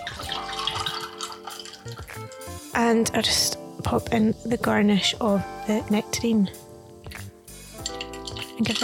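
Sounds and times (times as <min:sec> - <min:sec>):
naturally sweetened ginger beer pouring into a glass: 0:00.0 - 0:02.4, 0:07.8 - 0:08.8
speech: 0:01.8 - 0:06.6, 0:08.6 - 0:08.8.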